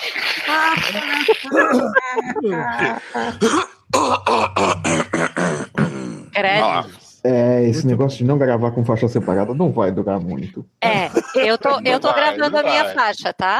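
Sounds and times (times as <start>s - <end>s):
laughter: 0.5s - 3.4s, 8.7s - 13.0s
speech: 0.5s - 5.0s, 6.4s - 13.5s
person coughing: 1.3s - 6.2s, 11.0s - 11.7s
man clearing throat: 1.3s - 6.3s, 11.0s - 11.7s.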